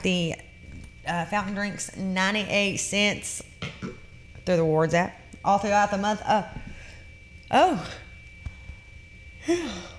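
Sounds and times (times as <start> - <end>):
speech: 0.0 - 3.5, 4.5 - 6.6, 7.5 - 8.0, 9.5 - 9.9
person yawning: 9.4 - 9.9.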